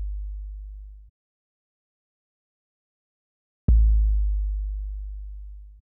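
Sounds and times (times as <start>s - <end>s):
kick drum in F minor: 3.7s - 5.1s.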